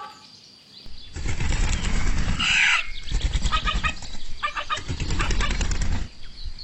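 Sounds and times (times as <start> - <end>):
rooster flapping wings over a fence: 1.1 - 6.2.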